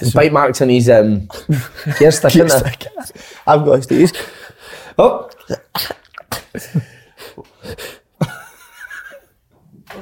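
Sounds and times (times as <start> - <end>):
speech: 0.0 - 6.0, 6.6 - 8.3
person sneezing with dust in their nose: 5.5 - 6.6.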